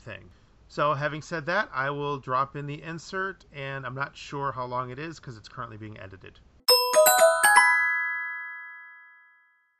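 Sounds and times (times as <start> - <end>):
speech: 0.0 - 6.5
video doorbell chime ringing a five-note melody: 6.7 - 9.7.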